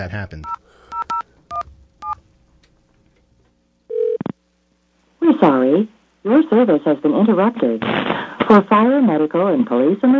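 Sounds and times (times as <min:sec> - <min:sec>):
speech: 0:00.0 - 0:00.6, 0:05.3 - 0:10.1
telephone keypad dialing beeps: 0:00.4 - 0:02.2
longer steady telephone tone: 0:03.9 - 0:04.3.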